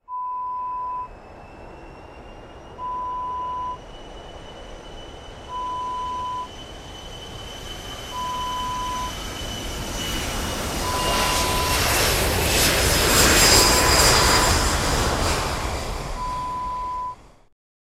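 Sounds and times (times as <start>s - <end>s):
jet taking off: 0.1s - 17.5s.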